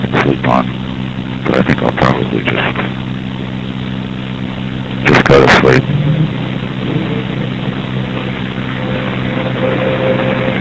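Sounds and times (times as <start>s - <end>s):
speech: 0.5s - 3.2s, 5.3s - 5.9s
commercial garbage truck engine rumbling: 4.0s - 10.6s.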